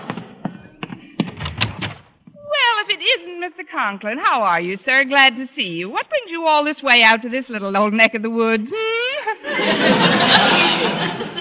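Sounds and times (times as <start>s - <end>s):
front door dull thump: 1.2s - 2.1s
speech: 3.4s - 9.0s, 9.6s - 11.3s
laughter: 8.8s - 11.3s.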